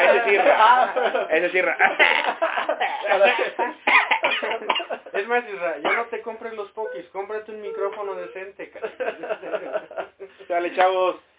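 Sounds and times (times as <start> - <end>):
speech: 0.3 - 11.3
coughing into a microphone: 2.8 - 5.0.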